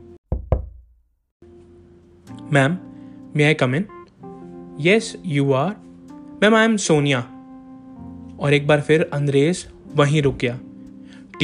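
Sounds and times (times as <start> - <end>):
firm knocking on a door: 0.3 - 0.8
speech: 2.5 - 4.0, 4.8 - 7.3, 8.4 - 10.7.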